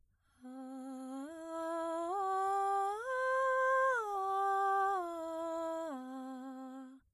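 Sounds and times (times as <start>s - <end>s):
female singer performing a breathy arpeggio: 0.4s - 7.1s.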